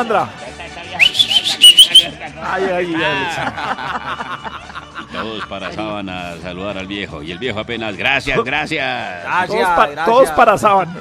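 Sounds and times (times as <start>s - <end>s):
speech: 0.0s - 11.0s
laughter: 0.3s - 1.1s, 1.9s - 6.0s
person whistling short high wavering shrill notes: 1.0s - 2.1s.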